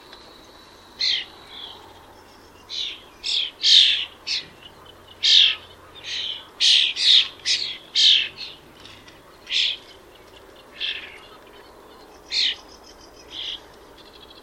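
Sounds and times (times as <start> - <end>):
bird giving loud harsh squawks: 2.7 - 10.0, 10.7 - 12.6.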